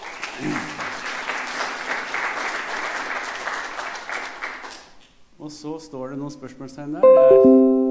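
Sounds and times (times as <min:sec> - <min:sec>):
crowd clapping: 0:00.0 - 0:05.0
speech: 0:00.4 - 0:00.8, 0:05.4 - 0:07.8.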